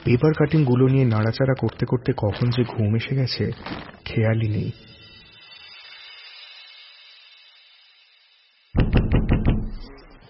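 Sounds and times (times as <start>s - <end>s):
speech: 0.1s - 4.9s
knocking and pushing on a door: 8.8s - 9.8s.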